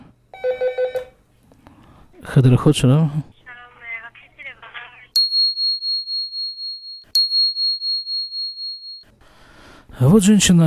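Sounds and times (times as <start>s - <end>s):
workplace telephone ringing with bright electronic beeps: 0.4s - 1.1s
speech: 2.2s - 3.3s, 10.0s - 10.6s.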